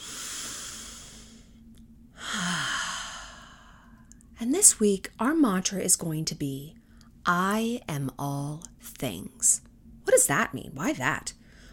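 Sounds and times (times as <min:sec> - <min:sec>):
slow breathing in through the nose and out through the mouth: 0:00.0 - 0:04.2, 0:11.4 - 0:11.7
speech: 0:04.4 - 0:11.4.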